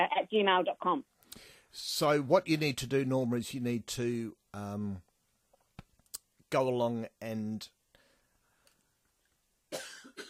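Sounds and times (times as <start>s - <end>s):
speech: 0.0s - 5.1s, 6.5s - 7.8s
harsh cough: 9.7s - 10.2s.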